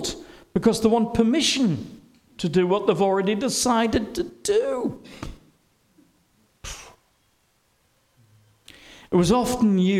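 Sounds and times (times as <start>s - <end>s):
speech: 0.0s - 5.3s, 9.1s - 9.9s
person sneezing: 6.6s - 7.1s.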